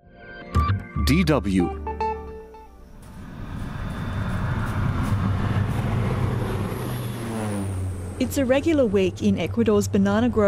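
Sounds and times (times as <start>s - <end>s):
speech: 1.1s - 1.8s, 8.2s - 10.4s
low-flying crop-spraying propeller plane engine roaring: 3.0s - 10.4s.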